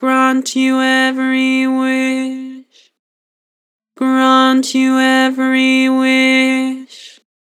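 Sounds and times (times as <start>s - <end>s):
flat vocals: 0.0s - 2.7s, 4.0s - 7.2s.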